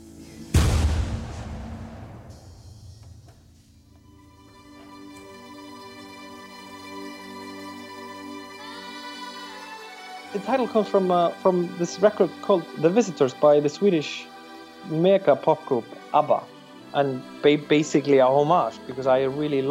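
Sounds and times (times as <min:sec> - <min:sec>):
deep cannon blast outside: 0:00.5 - 0:03.7
speech: 0:10.4 - 0:19.6.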